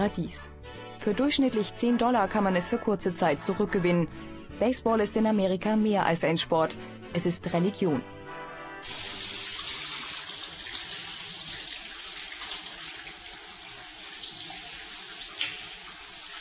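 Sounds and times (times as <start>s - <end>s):
speech: 0.0s - 8.1s, 8.8s - 9.1s
shower running water: 8.8s - 16.3s.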